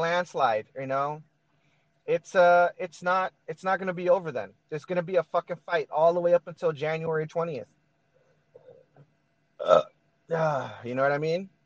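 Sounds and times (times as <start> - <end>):
speech: 0.0 - 1.3, 2.1 - 7.8, 9.6 - 11.6
person burping: 9.6 - 10.8.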